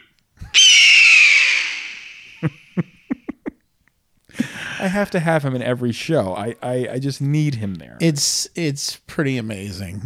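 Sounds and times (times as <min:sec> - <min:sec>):
eagle screech sound effect: 0:00.5 - 0:02.5
speech: 0:04.8 - 0:10.0.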